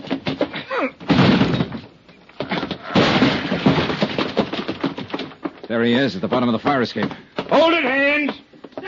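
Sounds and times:
door being forced open with crashing blows: 0.0 - 5.7
speech: 5.7 - 8.4.

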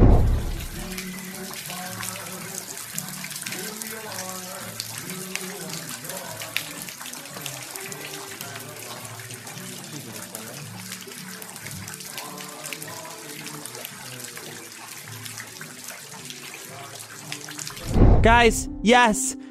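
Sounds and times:
floodwater rushing through a flooded thrift shop: 0.0 - 18.6
indistinct tonal voice-like layer: 17.8 - 19.4
speech: 18.2 - 19.4.

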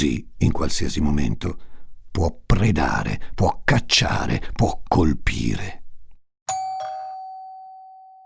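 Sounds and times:
speech: 0.0 - 5.8
doorbell two-tone ding-dong chime: 6.5 - 8.2.

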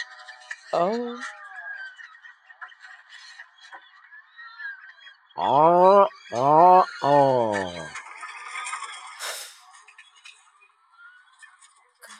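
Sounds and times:
speech: 0.7 - 1.4, 5.4 - 7.2
bird making loud nasal voice-like calls: 5.4 - 7.9.

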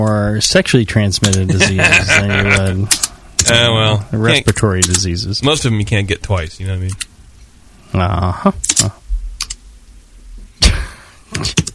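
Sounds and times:
speech: 0.0 - 7.1, 7.9 - 9.0, 11.3 - 11.6
laughter: 1.3 - 2.9
loud computer keyboard typing: 2.4 - 3.7, 4.4 - 5.1, 6.3 - 7.1, 8.6 - 9.6, 11.3 - 11.7.

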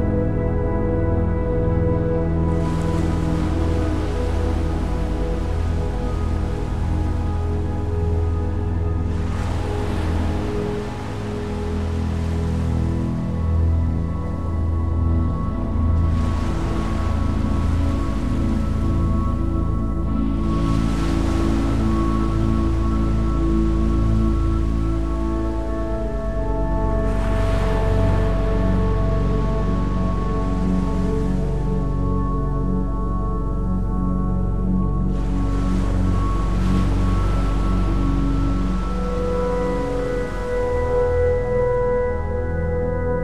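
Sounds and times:
gentle sustained music of soft held notes and a low drone: 0.0 - 43.2.

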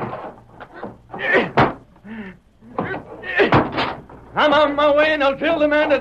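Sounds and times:
door being forced open: 0.0 - 1.9, 2.7 - 4.3
heavy thuds and bangs: 0.0 - 1.9, 2.7 - 4.3
speech: 4.4 - 5.9.

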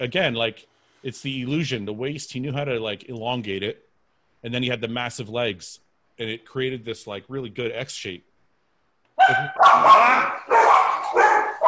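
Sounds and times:
speech: 0.0 - 3.8, 4.4 - 8.3, 9.2 - 11.4
dogs barking: 9.2 - 11.6.

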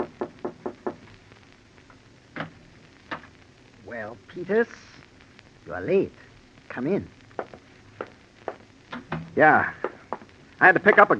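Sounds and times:
knocking on a door: 0.0 - 1.0
speech: 3.9 - 5.0, 5.6 - 7.2, 9.4 - 9.8, 10.6 - 11.1.

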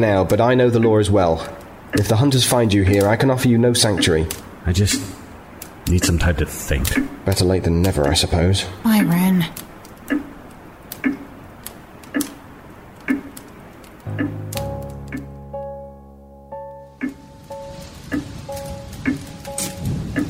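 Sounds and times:
speech: 0.0 - 5.2, 5.8 - 10.2
steady rain falling: 0.0 - 15.5, 16.8 - 20.2
clock ticking: 0.0 - 15.8, 16.8 - 20.2
low sustained musical chord: 14.1 - 20.2.

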